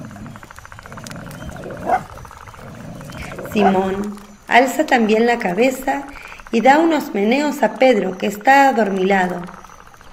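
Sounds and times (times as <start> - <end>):
deep rumbling animal growl: 0.0 - 4.4
speech: 3.6 - 9.6.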